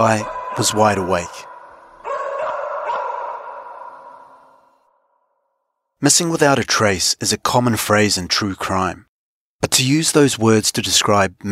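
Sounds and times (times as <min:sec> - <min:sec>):
speech: 0:00.0 - 0:01.5, 0:06.0 - 0:11.5
cadaver dog barking during search: 0:00.0 - 0:04.7.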